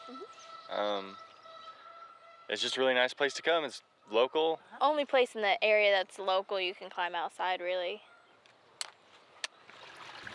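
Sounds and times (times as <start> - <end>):
speech: 0.1 - 1.3, 2.5 - 8.1
creek water rushing beneath a low-water concrete bridge: 9.7 - 10.3.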